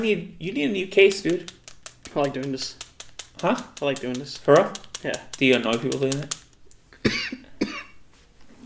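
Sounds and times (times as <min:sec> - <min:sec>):
speech: 0:00.0 - 0:02.8, 0:03.4 - 0:06.4
raspy coughs: 0:07.0 - 0:08.0.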